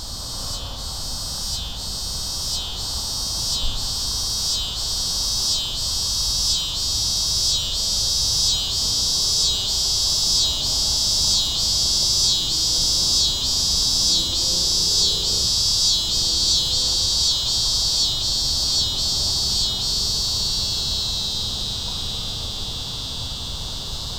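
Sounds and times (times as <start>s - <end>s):
cicada buzzing: 0.0s - 24.1s.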